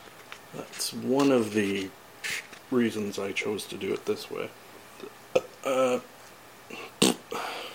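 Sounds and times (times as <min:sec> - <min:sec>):
speech: 0:00.5 - 0:06.9
burp: 0:05.0 - 0:06.0, 0:06.7 - 0:07.4.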